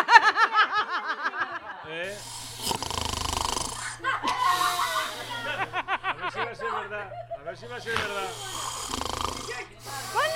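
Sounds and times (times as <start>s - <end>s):
bursts of laughter: 0.0s - 2.1s, 3.8s - 8.0s
loud drawn-out rasping snores: 2.0s - 6.0s, 7.7s - 10.3s
speech: 7.1s - 8.6s.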